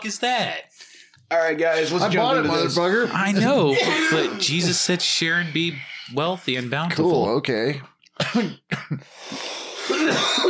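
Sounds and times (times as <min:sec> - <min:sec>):
speech: 0:00.0 - 0:10.4
harsh coughs after smoking: 0:03.7 - 0:04.7, 0:08.2 - 0:09.1, 0:09.7 - 0:10.4.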